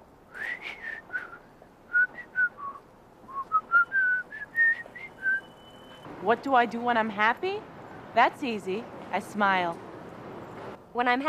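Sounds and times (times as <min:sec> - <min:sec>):
person whistling a short lively tune: 0:00.3 - 0:05.9
speech: 0:06.2 - 0:09.9, 0:10.9 - 0:11.2.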